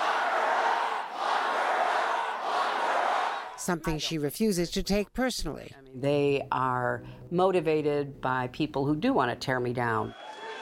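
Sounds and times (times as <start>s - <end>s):
large crowd chanting in unison at a campaign rally: 0.0s - 3.6s, 10.2s - 10.5s
speech: 3.6s - 10.3s.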